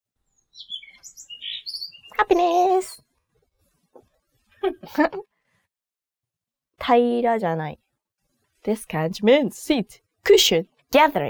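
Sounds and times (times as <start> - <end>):
bird chirping in high-pitched tweets: 0.4 - 3.0
speech: 0.6 - 1.2, 2.2 - 3.0, 4.6 - 5.3, 6.8 - 7.8, 8.6 - 11.2.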